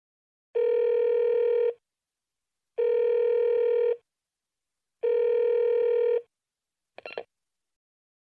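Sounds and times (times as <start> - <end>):
telephone ringback tone: 0.6 - 1.8, 2.8 - 4.0, 5.0 - 6.3.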